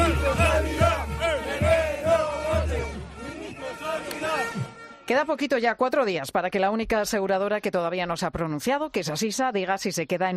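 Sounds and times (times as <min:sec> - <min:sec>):
crowd chanting at a street protest in Madrid: 0:00.0 - 0:05.1
speech: 0:05.1 - 0:10.3.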